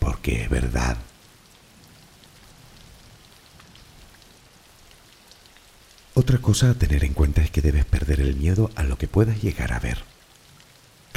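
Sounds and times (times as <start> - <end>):
steady rain pattering on surfaces: 0.0 - 11.1
speech: 0.2 - 1.1, 6.2 - 10.2.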